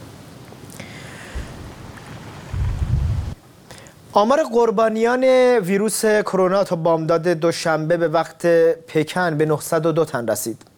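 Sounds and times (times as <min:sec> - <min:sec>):
rain pouring: 0:00.8 - 0:03.4
storm wind roaring: 0:01.2 - 0:03.4
speech: 0:04.2 - 0:10.7.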